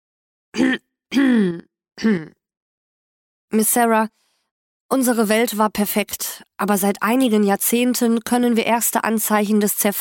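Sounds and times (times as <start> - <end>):
person clearing throat: 0.6 - 2.4
speech: 0.6 - 2.4, 3.5 - 4.2, 4.9 - 9.9.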